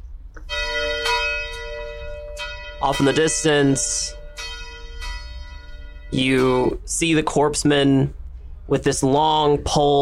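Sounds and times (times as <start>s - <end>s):
low rumble: 0.0s - 9.9s
distant church bells ringing: 0.4s - 7.9s
speech: 2.8s - 4.2s, 6.1s - 9.9s.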